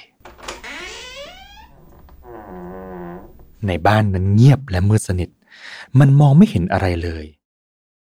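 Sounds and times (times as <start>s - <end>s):
house door slowly pushed open creaking: 0.2s - 3.6s
speech: 3.6s - 7.4s.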